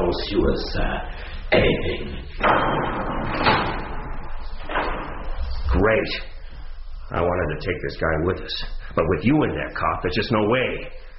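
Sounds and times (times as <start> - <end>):
speech: 0.1 - 3.7, 5.8 - 6.3, 7.1 - 11.0
elevator doors grinding and rumbling open: 2.4 - 5.4.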